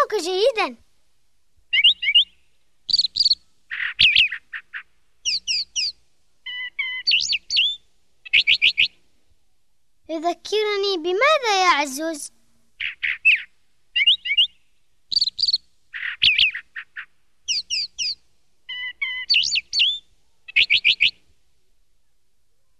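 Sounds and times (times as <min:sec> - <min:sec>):
speech: 0:00.2 - 0:00.8, 0:10.2 - 0:12.4
sparrow chirping: 0:01.7 - 0:09.0, 0:12.8 - 0:21.2.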